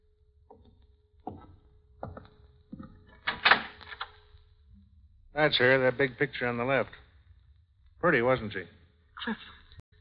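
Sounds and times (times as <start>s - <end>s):
wooden knocks and clunks of a door latch and handle: 0.5s - 3.7s
speech: 5.4s - 7.0s, 8.0s - 9.6s.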